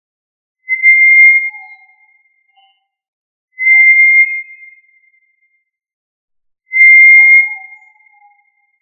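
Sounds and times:
tinamou whistles: 0.7 - 2.8, 3.6 - 5.2, 6.7 - 8.8.

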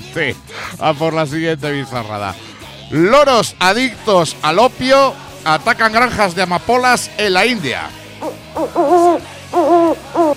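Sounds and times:
speech: 0.1 - 10.3
owl hooting played as a sound effect: 8.2 - 10.3.

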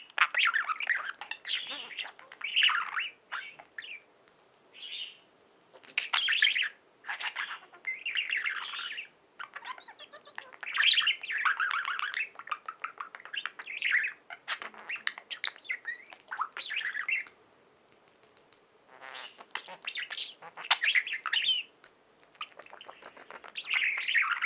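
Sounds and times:
budgerigar warbling: 0.2 - 4.0, 5.8 - 17.3, 18.9 - 21.7.

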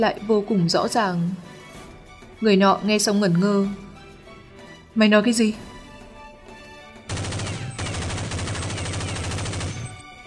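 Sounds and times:
speech: 0.0 - 1.6, 2.4 - 3.8, 5.0 - 5.7
rapid gunfire: 7.1 - 10.0.

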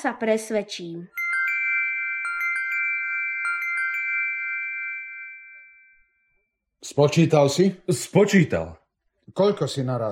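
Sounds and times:
speech: 0.0 - 1.2, 6.8 - 10.0
small bell ringing: 1.2 - 6.5.

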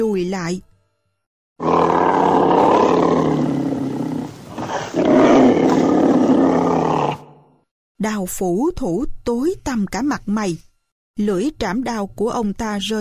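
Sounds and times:
speech: 0.0 - 0.7, 8.0 - 12.9
white tiger roaring: 1.6 - 7.5.

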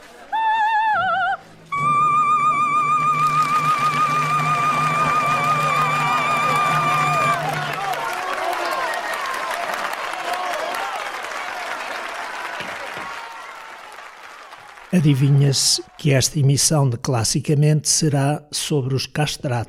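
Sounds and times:
held musical note: 1.0 - 7.9
loud general audience applause: 1.8 - 16.4
speech: 15.0 - 19.6.

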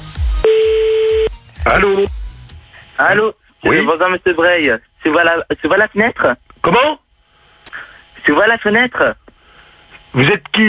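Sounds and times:
telephone tones while calling someone back: 0.4 - 1.3
speech: 1.7 - 2.2, 3.0 - 7.0, 8.2 - 9.2, 10.1 - 10.6.

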